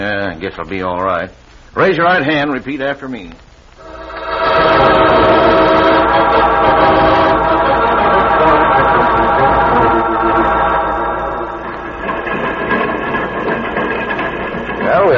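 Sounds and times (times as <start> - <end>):
speech: 0.0 - 3.5
train rumbling with roar of wheels and machinery, slowing down: 3.8 - 15.1.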